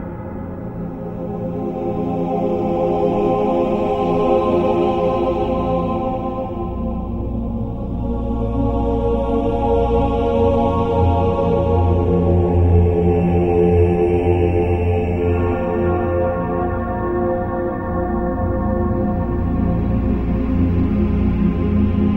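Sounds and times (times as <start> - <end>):
male choir singing swells: 0.7 - 22.1.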